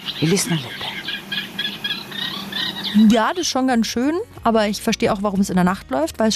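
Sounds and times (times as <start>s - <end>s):
reed warblers singing short repeated chattering phrases: 0.0s - 3.8s
speech: 0.2s - 0.9s, 3.0s - 6.3s.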